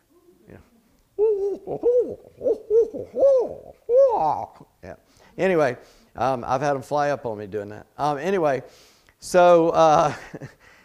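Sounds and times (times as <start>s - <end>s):
person imitating a barred owl call: 1.2s - 4.7s
speech: 1.5s - 10.7s.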